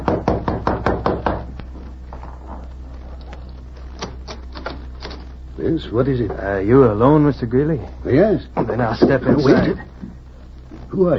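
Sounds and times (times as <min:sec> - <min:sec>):
knocking on a hotel room door: 0:00.0 - 0:01.5
low hum: 0:00.0 - 0:11.1
speech: 0:05.6 - 0:10.1, 0:10.9 - 0:11.1.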